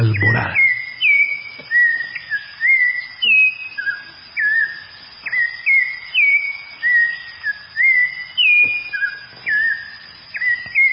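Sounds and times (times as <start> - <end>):
whistled song of a wild Colombian bird: 0.0 - 10.9.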